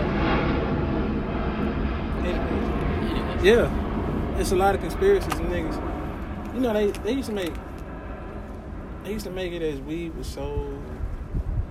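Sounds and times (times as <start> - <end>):
low-flying airplane passing overhead: 0.0 - 11.7
speech: 3.4 - 3.8, 4.4 - 5.9, 6.6 - 7.7, 9.0 - 11.0.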